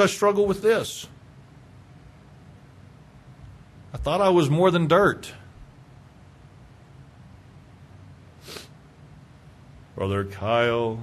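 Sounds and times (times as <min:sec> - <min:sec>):
speech: 0:00.0 - 0:01.2, 0:04.0 - 0:05.4, 0:10.0 - 0:11.0
person sneezing: 0:08.4 - 0:08.8.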